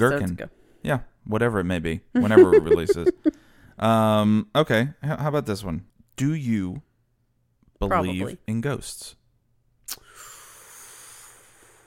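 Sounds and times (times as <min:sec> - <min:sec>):
speech: 0:00.0 - 0:06.9, 0:07.8 - 0:09.2
laughter: 0:02.2 - 0:03.4
person inhaling and exhaling: 0:09.9 - 0:11.8.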